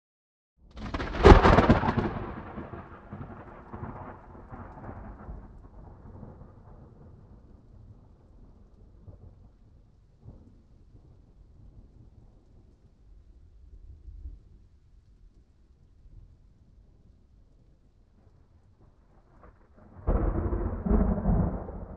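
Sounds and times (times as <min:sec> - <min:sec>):
close thunder: 0:00.7 - 0:11.3, 0:18.8 - 0:21.9.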